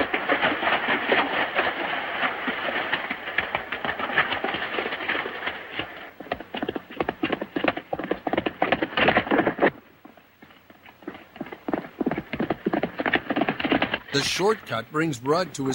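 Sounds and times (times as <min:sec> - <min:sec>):
horse hooves galloping along a small creek in a valley: 0:00.0 - 0:15.7
speech: 0:14.2 - 0:15.7.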